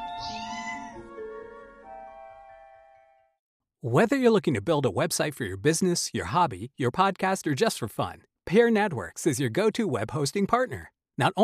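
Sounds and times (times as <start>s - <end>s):
cat meowing: 0.0s - 1.0s
speech: 3.8s - 11.4s.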